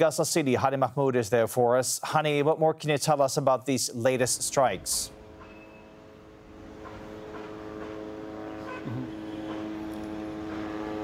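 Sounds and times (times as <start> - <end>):
speech: 0.0 - 5.2
drones hovering overhead over Gaza City: 4.4 - 11.0.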